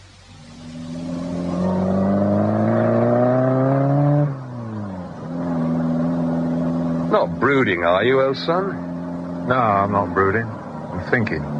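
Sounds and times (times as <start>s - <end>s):
car engine revving and pulling away: 0.0s - 11.5s
speech: 7.2s - 8.9s, 9.5s - 11.5s.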